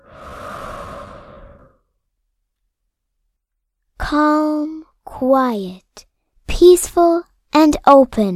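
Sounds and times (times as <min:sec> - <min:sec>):
slow soft breathing during a guided breathing exercise: 0:00.0 - 0:02.0
speech: 0:04.1 - 0:08.3.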